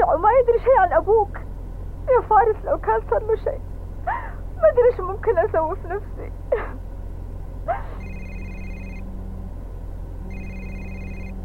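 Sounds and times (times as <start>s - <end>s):
steady low hum: 0.0s - 11.4s
speech: 2.1s - 6.8s, 7.7s - 8.0s
telephone ringing with an incoming call: 8.0s - 9.1s, 10.3s - 11.4s.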